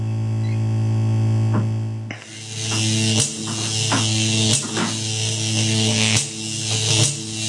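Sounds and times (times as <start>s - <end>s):
electrical buzzing from water-damaged machine: 0.1s - 7.4s.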